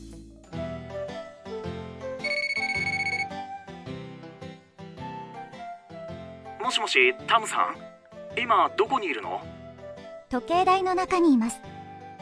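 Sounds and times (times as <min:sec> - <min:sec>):
mobile phone ringing with a melodic ringtone: 0:02.2 - 0:03.4
speech: 0:06.6 - 0:09.5, 0:10.3 - 0:11.7.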